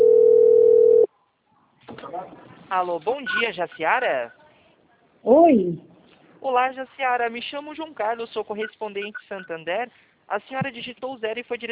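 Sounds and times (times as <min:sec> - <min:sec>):
telephone dial tone while placing a call: 0:00.0 - 0:01.1
speech: 0:02.7 - 0:04.4, 0:05.2 - 0:11.7.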